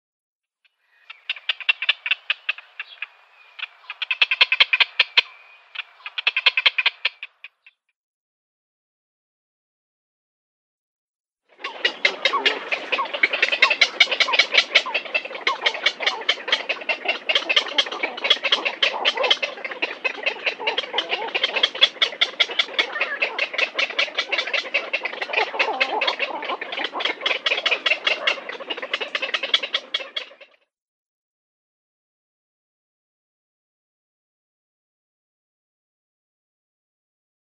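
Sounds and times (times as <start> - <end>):
Black-crowned Night-Heron nestlings calling: 0.9 - 7.7, 11.6 - 30.4.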